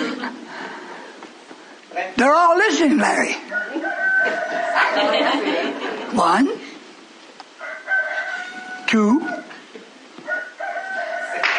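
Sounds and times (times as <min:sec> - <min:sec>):
laughter: 0:00.0 - 0:00.8, 0:04.2 - 0:06.2
steady hiss: 0:00.0 - 0:11.5
speech: 0:02.0 - 0:06.6, 0:08.9 - 0:09.4
rooster crowing: 0:03.5 - 0:05.6, 0:07.6 - 0:09.6, 0:10.2 - 0:11.5.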